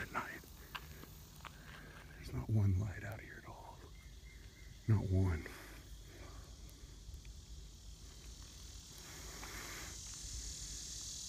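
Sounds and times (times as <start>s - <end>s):
cicadas buzzing at night: 0.0s - 11.2s
speech: 2.5s - 3.5s, 4.9s - 5.6s.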